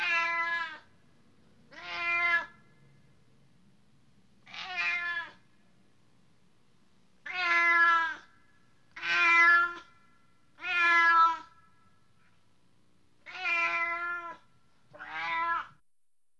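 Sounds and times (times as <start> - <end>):
excited tom cat meowing loud and harsh: 0.0 - 0.9, 1.7 - 2.6, 4.4 - 5.4, 7.2 - 8.3, 8.9 - 9.9, 10.6 - 11.6, 13.2 - 15.8.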